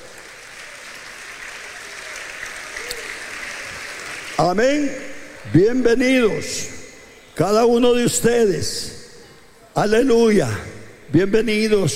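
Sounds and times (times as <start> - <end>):
audience applauding at a church service: 0.0 - 4.8
speech: 4.4 - 6.8, 7.4 - 9.0, 9.8 - 11.9.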